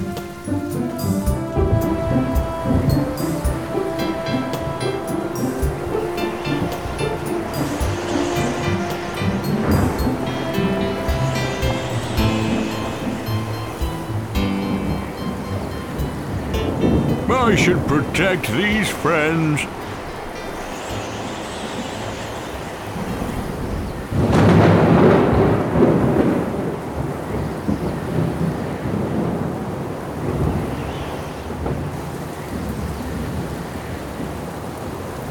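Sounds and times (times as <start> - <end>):
sustained musical tones: 0.0 - 23.8
rumbling thunder: 1.3 - 4.1, 5.7 - 15.1, 19.8 - 33.6
speech: 17.6 - 19.8.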